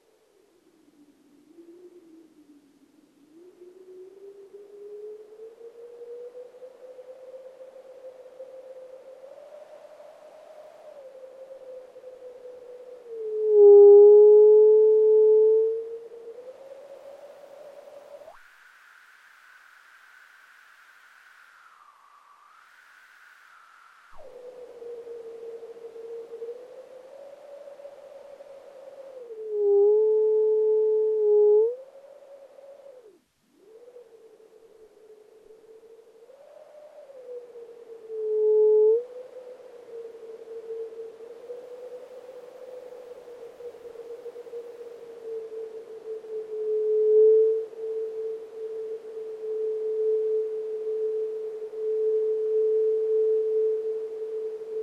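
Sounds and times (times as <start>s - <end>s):
noise: 0.0s - 54.8s.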